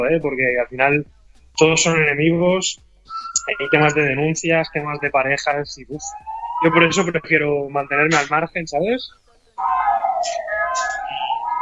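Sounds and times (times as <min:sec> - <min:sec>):
speech: 0:00.0 - 0:02.8, 0:03.4 - 0:10.9
siren wailing outside: 0:03.1 - 0:08.5, 0:09.6 - 0:11.6.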